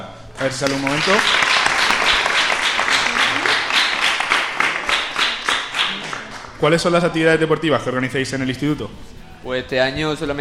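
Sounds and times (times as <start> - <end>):
crowd clapping: 0.3 - 6.6
speech: 0.4 - 1.4, 6.6 - 10.4.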